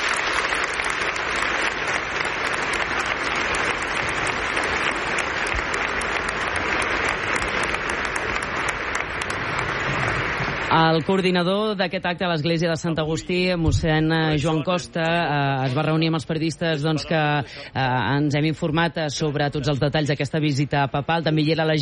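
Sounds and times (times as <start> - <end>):
audience applause: 0.0 - 11.7
speech: 10.8 - 21.8.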